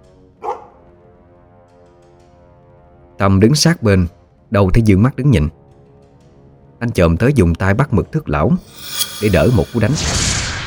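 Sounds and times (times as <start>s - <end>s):
dog barking: 0.4s - 0.8s
speech: 3.2s - 5.6s, 6.8s - 10.3s.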